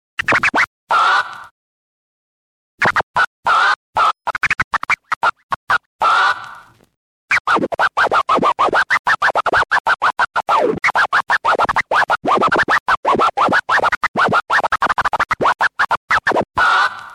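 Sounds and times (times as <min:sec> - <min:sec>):
scratch: 0:02.8 - 0:17.1.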